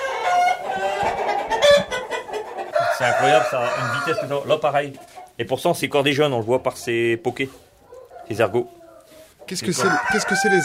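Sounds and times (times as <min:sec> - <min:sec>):
several roosters crowing: 0:00.0 - 0:04.6, 0:09.0 - 0:10.6
several roosters clucking: 0:00.0 - 0:10.6
speech: 0:03.0 - 0:07.6, 0:08.3 - 0:08.8, 0:09.5 - 0:10.6.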